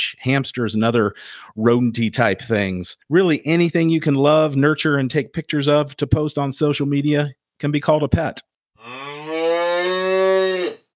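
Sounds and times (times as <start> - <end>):
speech: 0.0 - 9.1
cow mooing: 8.8 - 10.9.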